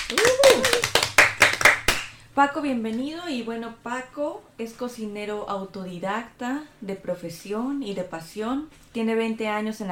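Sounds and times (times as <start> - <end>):
applause hands clapping in a radio studio in Stuttgart: 0.0 - 2.2
brief rising vocal whoop: 0.1 - 1.0
speech: 2.4 - 9.9.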